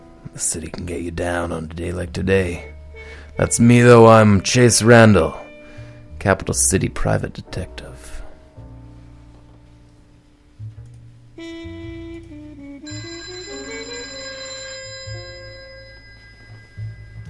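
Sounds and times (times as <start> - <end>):
steady low musical backdrop: 0.0 - 17.2
speech: 0.4 - 2.8, 3.4 - 5.4, 6.2 - 7.9
telephone ringing with bright bell-like tones: 12.9 - 17.2.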